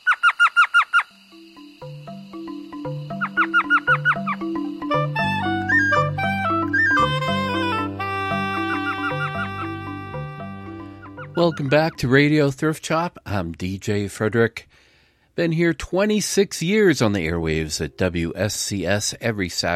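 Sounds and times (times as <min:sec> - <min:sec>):
tiny desert owl giving high yelping chirps: 0:00.0 - 0:01.2, 0:01.9 - 0:12.0
instrumental music: 0:01.2 - 0:12.4
speech: 0:11.4 - 0:14.8, 0:15.4 - 0:19.7.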